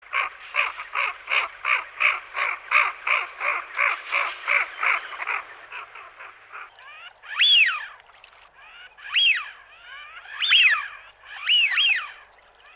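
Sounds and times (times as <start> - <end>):
Eurasian wigeon pulsed calls: 0.0 - 12.7
Eurasian wigeon whistles rising then falling: 7.4 - 7.8, 9.1 - 9.5, 11.4 - 12.1.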